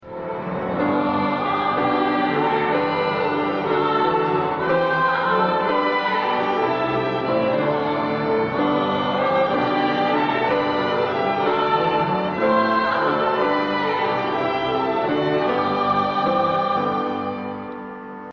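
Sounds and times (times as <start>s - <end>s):
string quartet playing: 0.1s - 17.9s.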